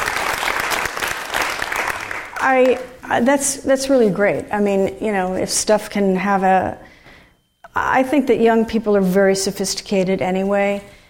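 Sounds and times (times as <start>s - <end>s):
audience including students applauding: 0.0s - 2.8s
speech: 2.4s - 6.9s, 7.8s - 11.0s.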